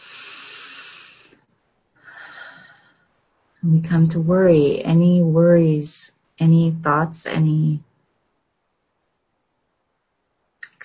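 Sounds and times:
slow breath drawn in and let out: 0:00.0 - 0:03.1
speech: 0:03.6 - 0:07.9.

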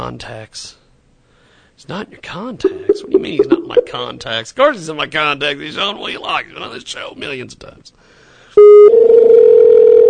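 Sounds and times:
speech: 0:00.0 - 0:00.8, 0:01.8 - 0:09.1
short clean beep of a Skype call opening: 0:08.6 - 0:09.1
outgoing Skype call dial tone: 0:08.6 - 0:10.0.

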